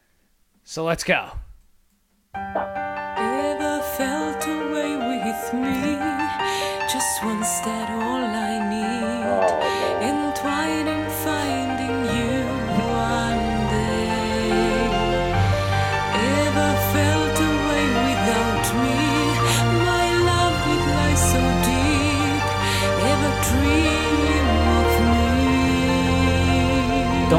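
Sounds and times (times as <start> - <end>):
speech: 0.7 - 1.5, 7.2 - 10.2
singer's melodic vocal line: 3.2 - 27.3
orchestral strings: 8.3 - 27.3.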